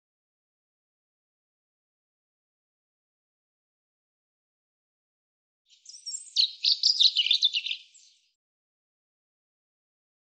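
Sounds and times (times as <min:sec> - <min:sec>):
European robin singing: 0:05.7 - 0:08.3.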